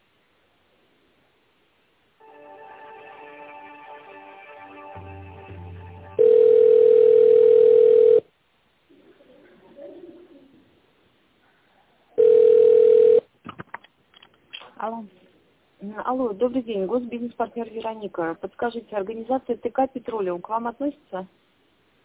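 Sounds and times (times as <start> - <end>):
short melodic tonal passage: 2.2 - 6.8
telephone ringback tone while a call is transferred to another department: 6.2 - 8.2, 12.2 - 13.2
speech: 16.1 - 21.4.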